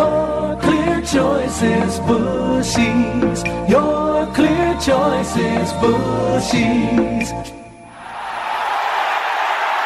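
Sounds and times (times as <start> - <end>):
speech: 1.1 - 7.6
stadium crowd roaring and cheering: 7.9 - 9.8.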